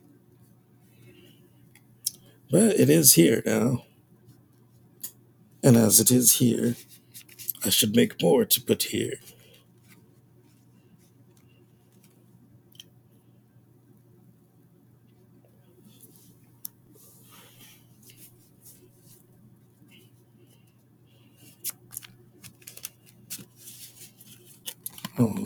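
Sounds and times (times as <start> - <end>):
low steady hum: 0.0 - 25.4
speech: 2.5 - 3.9, 5.6 - 7.0, 7.6 - 9.4
deck of cards being shuffled: 21.5 - 25.4.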